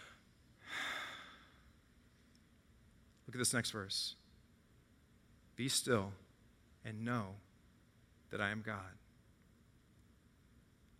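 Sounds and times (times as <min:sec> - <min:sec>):
deep cleansing breath: 0:00.0 - 0:01.7
faint hiss: 0:00.0 - 0:10.9
speech: 0:03.3 - 0:04.2, 0:05.6 - 0:06.2, 0:06.8 - 0:07.5, 0:08.3 - 0:09.0.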